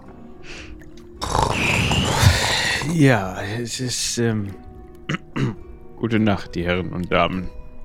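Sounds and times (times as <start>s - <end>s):
voice imitating deep snoring of a sleeper aboard a ship: 1.2s - 3.0s
speech: 2.9s - 4.7s, 6.1s - 7.6s.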